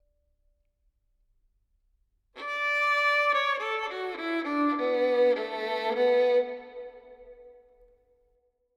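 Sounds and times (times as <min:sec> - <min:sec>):
violin melody with reverb in D minor: 0:02.4 - 0:07.5.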